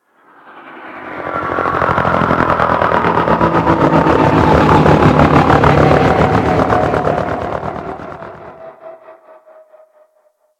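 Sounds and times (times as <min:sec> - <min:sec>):
distant drop ship arriving: 0:00.0 - 0:10.0.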